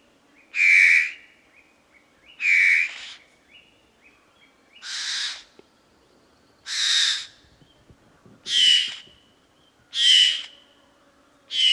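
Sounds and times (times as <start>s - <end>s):
fawn-breasted bowerbird giving harsh rasping calls with whistled overtone: 0.5s - 1.3s, 2.4s - 3.3s, 4.8s - 5.6s, 6.6s - 7.4s, 8.5s - 9.2s, 9.9s - 10.6s, 11.5s - 11.7s.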